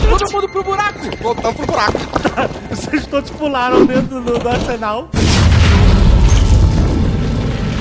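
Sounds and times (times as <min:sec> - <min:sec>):
speech: 0:00.2 - 0:05.7
laughter: 0:01.9 - 0:03.3
explosion of an explosive placed on a robot's head: 0:05.1 - 0:07.7.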